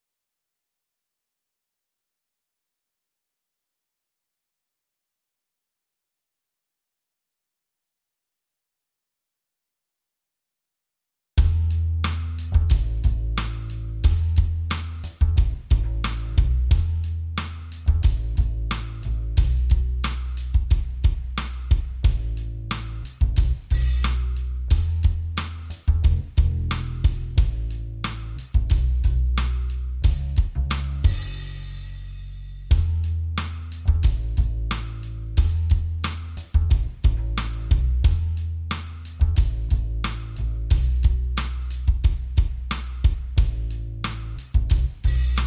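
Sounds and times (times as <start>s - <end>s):
bass: 11.4s - 45.4s
drums: 11.4s - 45.4s.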